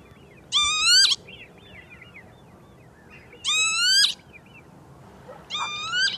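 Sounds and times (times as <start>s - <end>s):
northern lapwing wheezy slurred calls: 0.5s - 1.2s, 3.1s - 4.2s, 5.3s - 6.1s.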